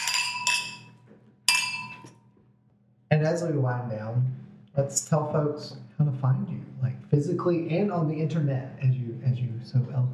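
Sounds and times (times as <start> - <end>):
wine glasses clinking in a toast: 0.0 - 2.1
faint murmur: 3.1 - 10.1
speech: 3.2 - 10.1.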